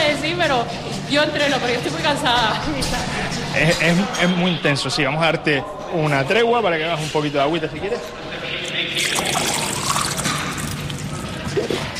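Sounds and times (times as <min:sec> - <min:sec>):
speech: 0:00.2 - 0:09.6
water being poured for a drink: 0:08.6 - 0:11.9.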